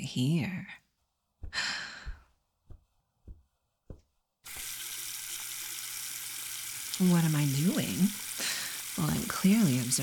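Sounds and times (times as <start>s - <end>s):
speech: 0.1s - 0.8s, 7.0s - 8.2s, 9.0s - 10.0s
breathy sigh: 1.5s - 2.2s, 8.4s - 8.8s
tap water running into a sink to wash a messy load: 4.5s - 10.0s.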